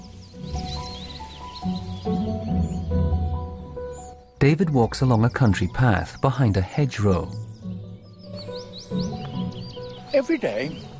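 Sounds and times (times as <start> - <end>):
bullfinch thrush blackbird and robin singing above a sunlit tree canopy: 0.0 - 10.9
speech: 4.4 - 7.5, 10.2 - 10.9.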